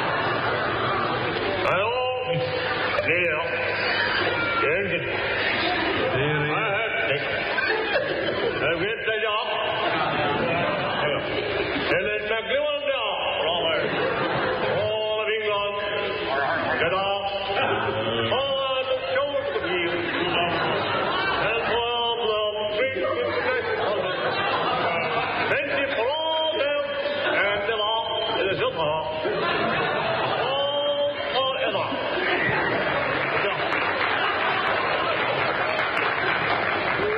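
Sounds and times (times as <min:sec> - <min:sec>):
large crowd chattering excitedly: 0:00.0 - 0:37.1
laughter: 0:00.0 - 0:37.1
people shouting and cheering: 0:00.0 - 0:37.1
people clapping: 0:32.2 - 0:37.1.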